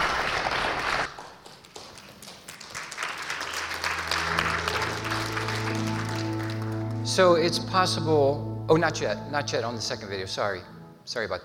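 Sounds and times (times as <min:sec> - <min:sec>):
crowd applause: 0:00.0 - 0:07.0
speech: 0:07.2 - 0:11.4.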